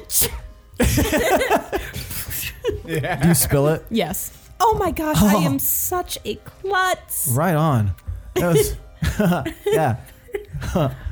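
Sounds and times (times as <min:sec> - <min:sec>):
person sneezing: 0:00.0 - 0:00.4, 0:02.0 - 0:02.6
speech: 0:00.1 - 0:02.0, 0:02.9 - 0:11.0
laughter: 0:00.8 - 0:03.5, 0:08.4 - 0:11.0
person talking animatedly: 0:04.0 - 0:05.7.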